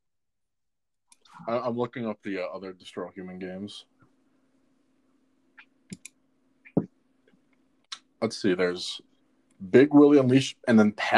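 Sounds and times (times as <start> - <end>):
steady low electrical hum: 1.2 - 11.1
speech: 1.4 - 3.9, 8.2 - 11.1
loud keyboard typing clicks: 5.6 - 6.9.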